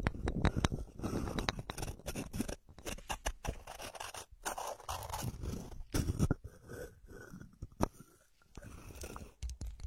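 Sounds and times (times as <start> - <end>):
ear scratching with dry scraping and rubbing strokes: 0.2 - 9.4.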